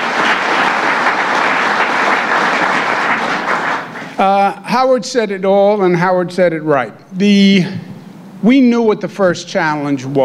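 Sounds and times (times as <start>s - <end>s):
large crowd applause: 0.0s - 4.3s
speech: 4.2s - 10.2s.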